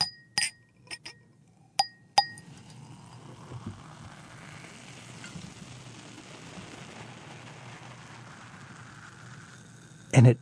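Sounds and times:
sharp glassy clinks: 0.0 - 1.2, 1.8 - 2.4.

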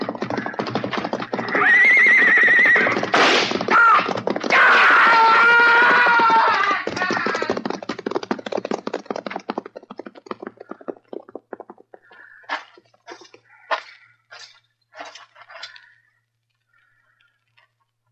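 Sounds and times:
horse hooves clopping in a corral: 0.0 - 18.1
horse whinnying: 1.2 - 7.8.

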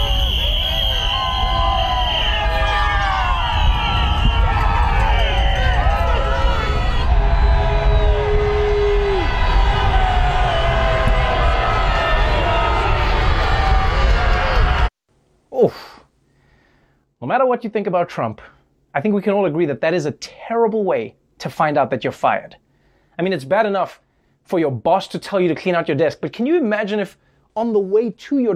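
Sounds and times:
horn-like tone: 0.0 - 4.4
dense street crowd of critics cheering and shouting as a motorcade passes: 0.0 - 14.9
whistles and whoops: 0.0 - 14.9
speech: 17.3 - 22.6, 23.2 - 28.5.

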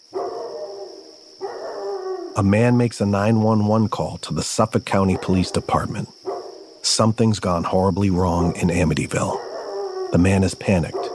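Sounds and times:
dog howling in a neighborhood: 0.1 - 2.4, 5.1 - 6.8, 8.3 - 11.1
speech: 2.4 - 6.2, 6.8 - 9.5, 10.1 - 11.1.

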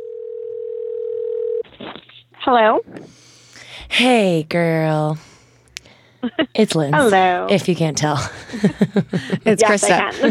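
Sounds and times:
telephone dial tone: 0.0 - 1.6
speech: 2.5 - 3.2, 3.8 - 5.3, 6.2 - 10.2
laughter: 6.2 - 6.6, 8.2 - 10.2.

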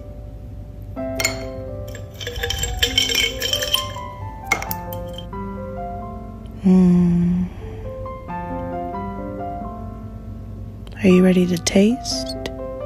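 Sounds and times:
ice cubes clinking in a bowl of coconut water with fruit: 1.2 - 5.3
speech: 6.7 - 7.1, 11.0 - 12.4.

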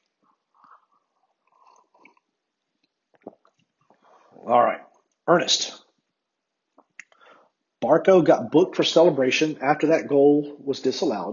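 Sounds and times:
person sipping coffee: 0.2 - 4.5
speech: 4.5 - 5.8, 7.9 - 11.3.

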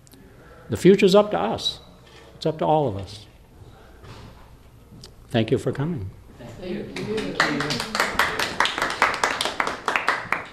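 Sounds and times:
speech: 0.7 - 1.8, 2.4 - 3.3, 5.3 - 7.9
audience applause after a talk on immigration history: 7.0 - 10.5.

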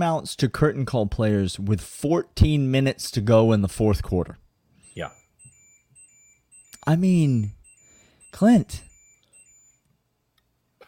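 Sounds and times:
speech: 0.0 - 4.4, 5.0 - 5.2, 6.8 - 7.6, 8.3 - 8.9
high-pitched electronic tones from a house alarm: 4.8 - 9.9.

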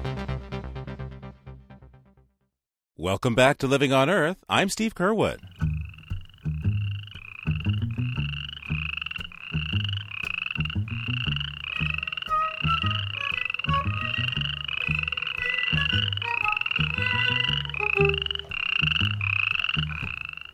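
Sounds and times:
speech: 3.1 - 5.5
dense chorus of frogs croaking: 5.3 - 20.5.

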